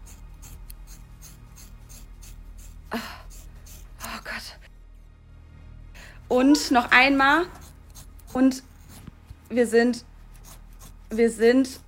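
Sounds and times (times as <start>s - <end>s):
scissors cutting through a person's long thick hair: 0.0s - 4.4s, 7.3s - 9.1s, 10.3s - 11.8s
speech: 6.3s - 7.6s, 8.4s - 8.7s, 9.5s - 10.1s, 11.1s - 11.8s.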